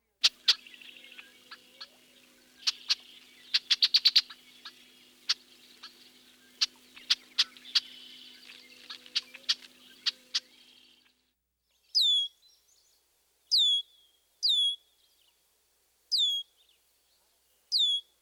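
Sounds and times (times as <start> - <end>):
high thin downward-slurred bird sear calls: 0.2 - 11.0, 13.5 - 14.9, 17.7 - 18.1.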